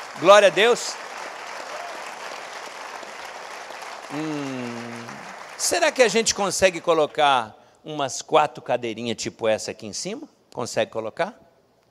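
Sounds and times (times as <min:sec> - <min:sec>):
audience applause: 0:00.0 - 0:07.3
speech: 0:00.2 - 0:01.1, 0:04.1 - 0:04.7, 0:05.6 - 0:11.4.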